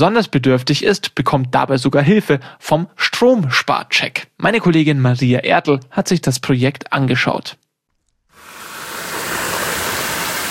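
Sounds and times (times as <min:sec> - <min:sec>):
speech: 0:00.0 - 0:07.6
running water measured during a home energy-saving check: 0:08.4 - 0:10.4.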